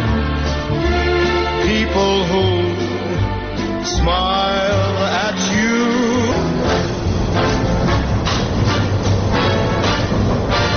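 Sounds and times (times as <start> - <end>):
Chicago Transit Authority elevated commuter train rumbling on elevated tracks: 0.0 - 10.7
train wheels rattling and clattering over rails: 3.6 - 10.7.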